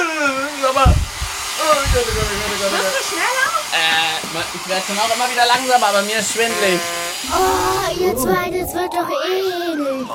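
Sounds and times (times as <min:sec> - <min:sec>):
hair dryer blowing air: 0:00.2 - 0:08.6
low rumbling burst: 0:00.8 - 0:02.6, 0:07.2 - 0:09.1
speech: 0:02.0 - 0:10.1.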